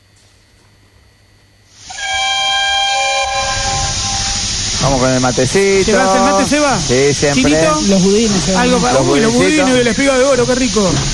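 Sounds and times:
locomotive horn or whistle sounding while starting up: 1.8s - 6.7s
speech: 4.8s - 11.1s.

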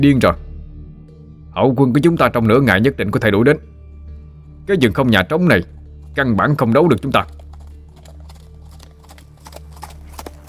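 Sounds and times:
speech: 0.0s - 0.4s, 1.6s - 3.8s, 4.7s - 7.4s
ridden horse's hooves clopping through a city gate: 5.5s - 10.4s.

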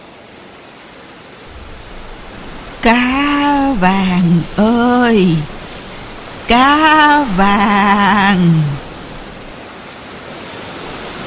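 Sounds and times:
violent storm wind roaring over the sea: 1.5s - 9.5s
speech: 2.8s - 5.5s, 6.5s - 8.8s.

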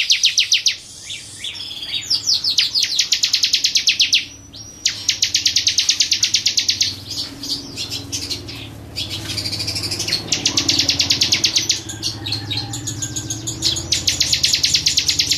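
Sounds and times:
Bar-winged prinia singing ticking trills: 0.0s - 15.3s.

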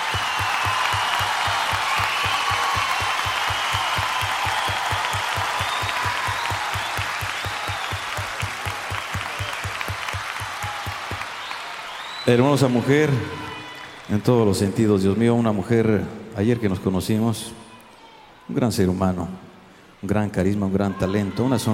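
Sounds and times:
audience applause for a singer at a live cumbia concert: 0.0s - 15.2s
speech: 12.3s - 13.4s, 14.1s - 17.6s, 18.5s - 19.4s, 20.0s - 21.7s.

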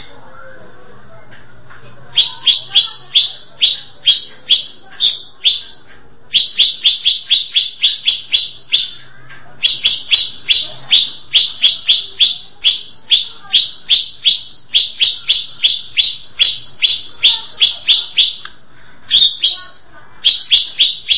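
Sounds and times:
greater green leafbird giving downslurred whistles: 2.1s - 9.1s, 9.6s - 18.5s, 19.1s - 21.1s.

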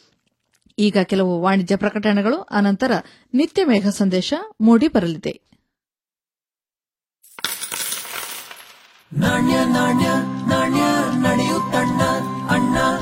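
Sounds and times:
speech: 0.8s - 5.5s, 9.1s - 12.9s
coins dropping and jingling: 7.2s - 9.2s.

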